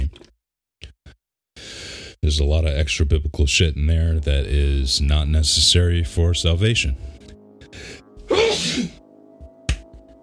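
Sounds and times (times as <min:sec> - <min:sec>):
speech: 0:02.2 - 0:07.2
person sneezing: 0:08.3 - 0:09.0.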